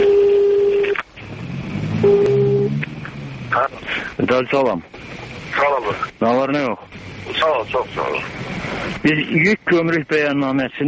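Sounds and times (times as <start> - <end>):
telephone line beeps as a business owner places a call: 0.0 - 1.0, 2.0 - 2.7
low rumbling noise: 1.0 - 10.3
speech: 3.6 - 8.4, 9.0 - 10.8.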